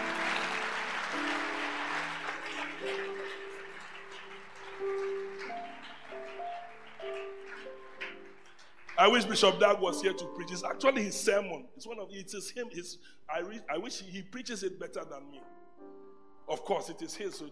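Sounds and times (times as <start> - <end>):
audience applause: 0.0 - 10.1
speech: 9.0 - 15.5, 16.5 - 17.5.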